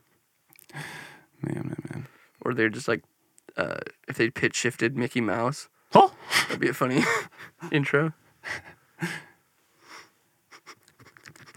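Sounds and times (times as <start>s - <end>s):
speech: 2.5s - 9.2s
nasal sniffing: 9.8s - 11.5s.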